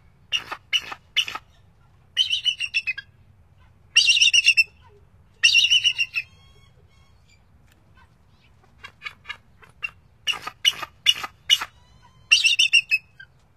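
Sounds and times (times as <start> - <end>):
bald eagle giving high thin chattering calls in North America: 0.3 - 1.6, 4.0 - 7.4, 8.8 - 13.4.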